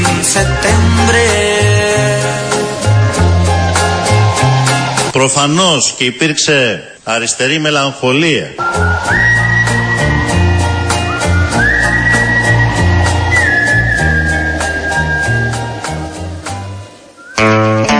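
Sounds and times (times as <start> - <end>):
drums in band backing: 0.0 - 5.2, 8.6 - 16.8
bass in band backing: 0.0 - 5.4, 8.4 - 17.9
speech: 5.2 - 9.5
sweet sustained whistled melody: 8.6 - 17.9.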